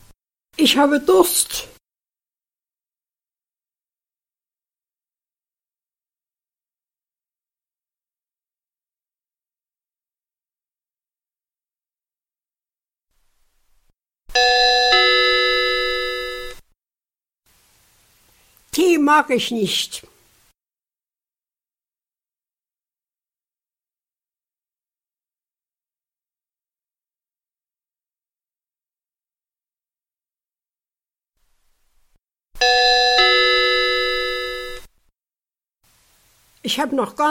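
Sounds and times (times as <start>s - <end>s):
speech: 0.6s - 1.7s, 18.8s - 20.1s, 36.6s - 37.3s
doorbell two-note ding-dong chime: 14.4s - 16.6s, 32.6s - 34.8s.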